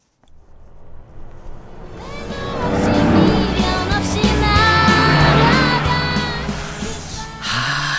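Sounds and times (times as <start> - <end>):
car engine passing alongside a slowly driving car: 0.1 - 7.9
loud thumping bass-heavy song playing from a passing car: 2.0 - 7.9.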